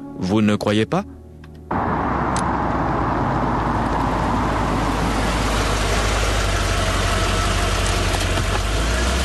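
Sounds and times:
speech: 0:00.2 - 0:01.9
faint whine of idling car engine: 0:01.7 - 0:07.8
car engine starting and idling in a car park: 0:01.7 - 0:09.2.

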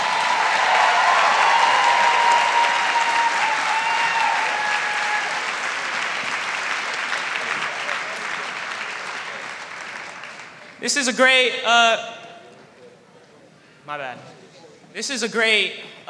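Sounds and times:
faint cheering: 0:00.0 - 0:05.7
crowd applauding: 0:00.0 - 0:10.9
speech: 0:10.9 - 0:12.2, 0:13.9 - 0:16.0.

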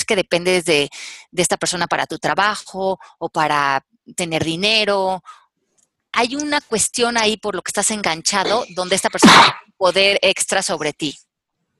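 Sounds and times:
speech: 0:00.1 - 0:05.4, 0:06.2 - 0:11.3
person sneezing: 0:08.5 - 0:09.6.

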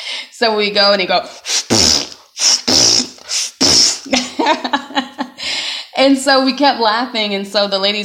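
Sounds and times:
speech: 0:00.4 - 0:01.8, 0:06.0 - 0:08.0
voice imitating a manual air pump with mouth fart noises: 0:01.3 - 0:04.3
laughter: 0:04.1 - 0:05.4.

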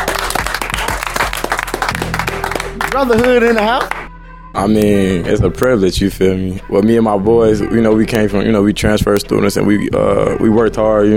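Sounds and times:
group applauding: 0:00.0 - 0:04.1
speech: 0:02.9 - 0:11.1.

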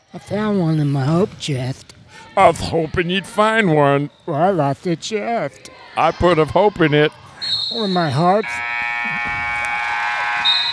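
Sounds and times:
speech: 0:00.1 - 0:08.7
loud harsh electric buzzer droning: 0:08.4 - 0:10.7.

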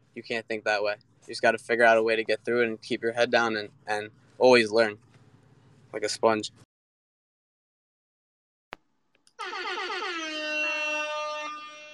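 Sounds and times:
speech: 0:00.2 - 0:05.1, 0:05.9 - 0:06.7
air horn blast: 0:09.4 - 0:11.9.

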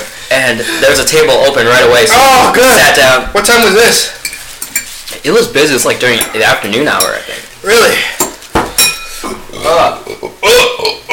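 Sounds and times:
speech: 0:00.4 - 0:04.3, 0:05.2 - 0:08.2, 0:09.6 - 0:11.1
dishes and cutlery clinking: 0:03.5 - 0:05.1, 0:06.0 - 0:07.3, 0:08.2 - 0:09.5
person burping: 0:09.3 - 0:11.1.

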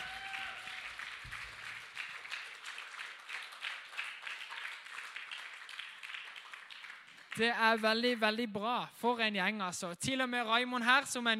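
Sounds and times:
audience applause for a worship music team: 0:00.0 - 0:07.8
speech: 0:07.4 - 0:11.3.

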